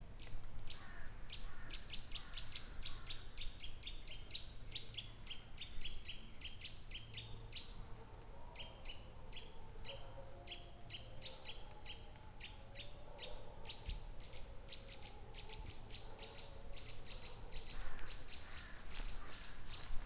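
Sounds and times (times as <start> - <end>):
birds: 0.0 - 20.0
dogs: 7.2 - 18.0.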